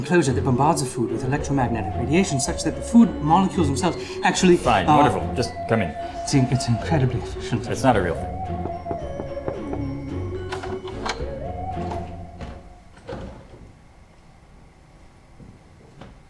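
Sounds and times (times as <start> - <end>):
speech: 0.0 - 8.6
sharp knocks on a door: 8.3 - 10.2.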